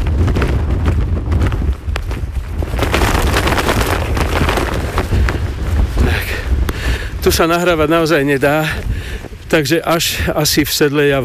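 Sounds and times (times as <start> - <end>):
jacket hood flapping in strong wind: 0.0 - 6.4
near-gale wind buffeting the microphone on a mountain hiking trail: 0.0 - 11.2
speech: 7.3 - 8.9, 9.5 - 11.2.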